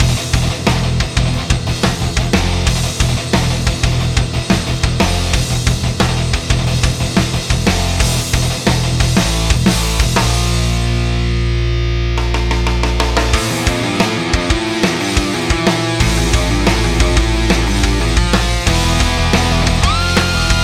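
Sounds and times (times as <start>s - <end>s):
thrash music: 0.0s - 20.6s.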